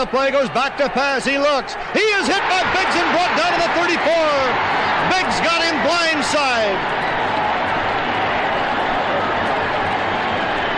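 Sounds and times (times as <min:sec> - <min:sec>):
speech: 0:00.0 - 0:07.4
huge crowd roaring at an American football game: 0:00.0 - 0:10.7.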